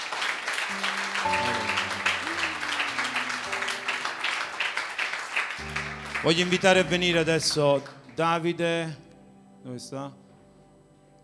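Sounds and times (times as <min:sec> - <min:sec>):
crowd applauding: 0:00.0 - 0:08.3
speech: 0:06.2 - 0:09.0, 0:09.6 - 0:10.2.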